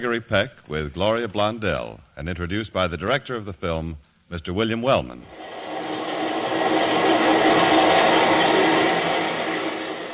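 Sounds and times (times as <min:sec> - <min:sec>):
speech: 0:00.0 - 0:05.4
elevated trains roaring past overhead in Chicago on a hot day: 0:05.4 - 0:10.1.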